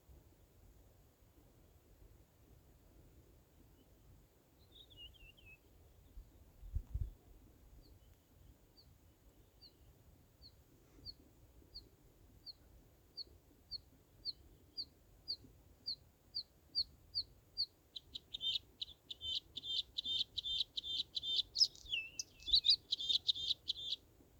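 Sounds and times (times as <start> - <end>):
bluethroat Luscinia svecica svecica singing: 18.0 - 24.0.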